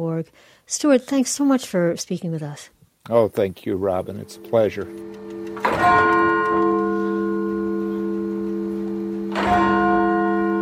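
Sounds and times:
speech: 0.0s - 6.3s
church bells ringing with long humming resonance: 3.8s - 10.6s.

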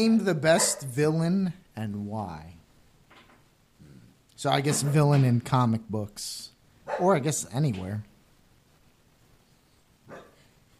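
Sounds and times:
speech: 0.0s - 2.6s, 4.4s - 8.1s
quiet hum: 0.0s - 10.7s
dog bark: 0.6s - 0.9s, 6.9s - 7.2s, 10.1s - 10.5s.

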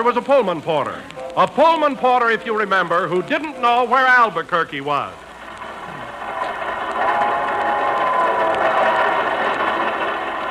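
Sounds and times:
speech: 0.0s - 5.2s
passenger train from New York running on rails: 5.2s - 10.4s.

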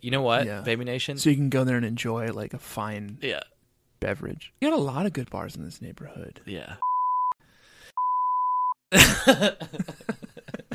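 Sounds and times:
speech: 0.0s - 6.9s, 8.9s - 10.2s
steady pure censor bleep tone: 6.8s - 7.4s, 8.0s - 8.8s
coughing or throaty vocal noises: 8.9s - 9.6s.

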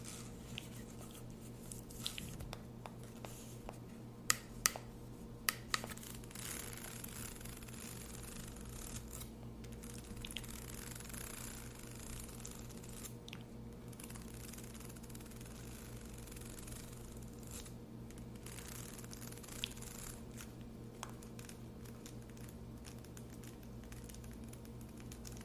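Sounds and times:
steady low hum: 0.0s - 25.4s
quiet mouth sounds with soft wet clicks and chewing-like squishes: 1.9s - 2.4s, 10.2s - 10.5s.

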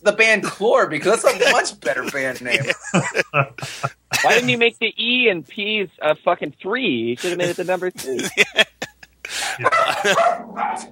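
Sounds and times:
speech: 0.0s - 10.9s
laughter: 1.2s - 4.6s, 7.2s - 10.3s
several dogs barking: 9.6s - 10.9s.

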